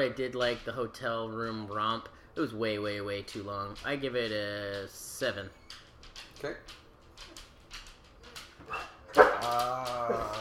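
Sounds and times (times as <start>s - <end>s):
speech: 0.0s - 6.8s, 8.7s - 10.3s
dog barking and whining: 8.5s - 10.3s.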